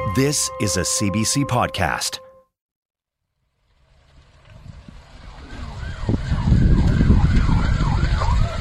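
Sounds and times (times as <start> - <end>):
speech: 0.2 - 2.3
lobster storage pound burning at night in Middle West Pubnico, Nova Scotia: 3.3 - 8.6
emergency sirens wailing: 4.9 - 8.6.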